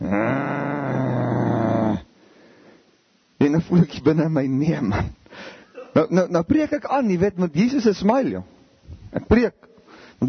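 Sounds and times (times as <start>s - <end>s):
dog growling: 0.0s - 2.1s
speech: 3.5s - 9.6s.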